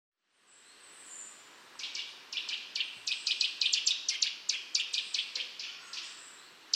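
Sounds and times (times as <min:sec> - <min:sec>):
faint high hiss: 0:00.2 - 0:06.7
Eurasian nuthatch Sitta europaea calls: 0:01.8 - 0:06.7.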